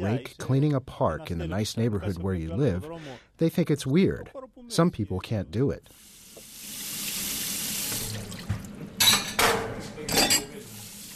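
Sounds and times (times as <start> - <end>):
speech: 0.0 - 6.1
water running from a tap into a sink: 5.9 - 9.8
dishes and cutlery clinking: 8.4 - 10.6.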